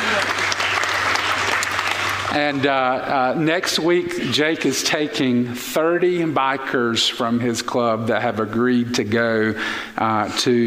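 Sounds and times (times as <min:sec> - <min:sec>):
audience clapping: 0:00.0 - 0:03.0
speech: 0:02.3 - 0:10.6.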